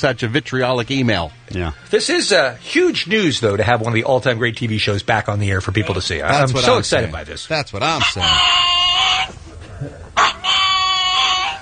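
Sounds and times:
speech: 0.0 - 9.9
small pug dog howling: 8.2 - 9.3, 10.2 - 11.6.

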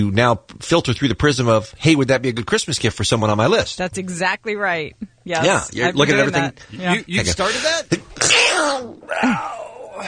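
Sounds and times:
speech: 0.0 - 10.0
person sneezing: 8.1 - 10.0.

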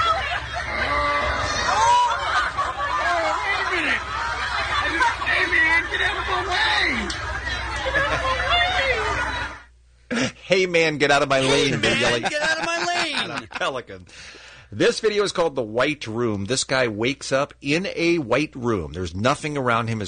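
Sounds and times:
large crowd murmuring and chattering: 0.0 - 9.8
laughter: 0.0 - 10.4, 11.3 - 14.0
speech: 10.5 - 20.0.

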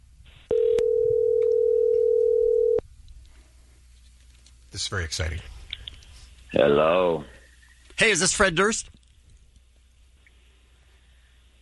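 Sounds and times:
telephone dial tone: 0.5 - 2.8
speech: 4.8 - 5.5, 6.5 - 7.4, 8.0 - 8.9.

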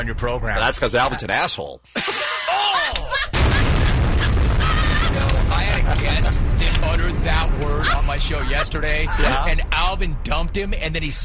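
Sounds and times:
speech: 0.0 - 3.2, 5.2 - 11.2
laughter: 1.0 - 9.6
explosion sound effect: 3.3 - 11.2
roaring rumble of blast and debris: 3.3 - 11.2.

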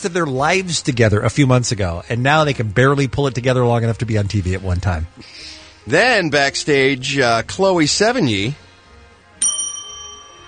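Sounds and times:
speech: 0.0 - 8.6
bright bell ding struck as a show sound effect: 9.4 - 10.4.

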